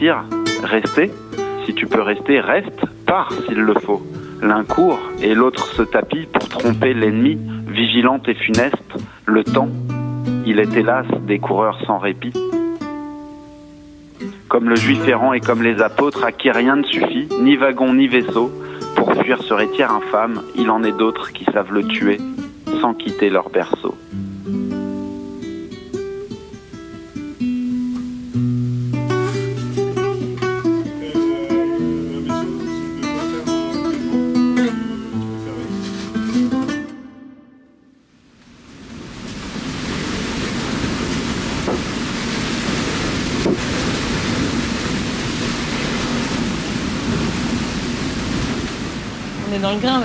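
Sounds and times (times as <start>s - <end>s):
speech: 0.0s - 12.6s, 14.5s - 24.2s, 49.7s - 50.0s
music: 0.0s - 38.0s
strong wind blowing at sea at 35 knots: 38.6s - 50.0s.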